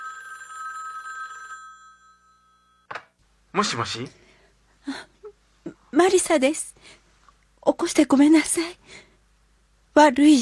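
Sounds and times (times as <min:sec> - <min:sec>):
telephone bell ringing: 0:00.0 - 0:02.9
speech: 0:03.6 - 0:04.2, 0:06.1 - 0:07.0, 0:07.7 - 0:09.1, 0:10.0 - 0:10.3.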